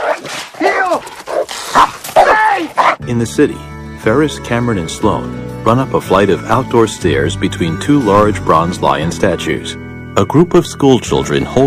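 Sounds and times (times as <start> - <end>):
dog barking, yipping and whimpering while chasing in a backyard: 0.0 - 3.0
speech: 3.1 - 11.6.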